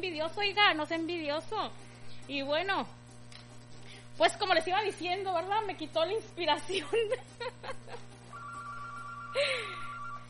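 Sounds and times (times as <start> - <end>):
speech: 0.0 - 3.0, 4.2 - 8.2, 9.4 - 9.9
telephone ringing during a radio call-in show: 8.3 - 10.2.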